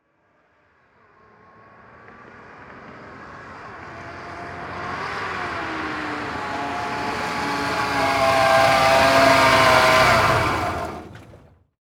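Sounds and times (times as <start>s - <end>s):
Ford Ranger pickup truck driving up fast: 3.4s - 11.7s
Ford Ranger truck engine shutting off: 5.6s - 11.7s.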